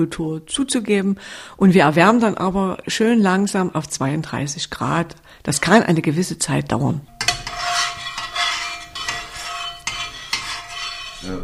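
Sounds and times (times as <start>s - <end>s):
speech: 0.0s - 7.3s, 11.2s - 11.4s
utensil stirring milk in a metal pot during cheesemaking: 7.2s - 11.4s.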